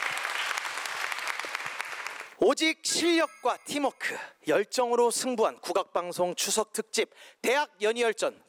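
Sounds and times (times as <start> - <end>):
large audience applause: 0.0 - 2.3
speech: 2.4 - 8.4.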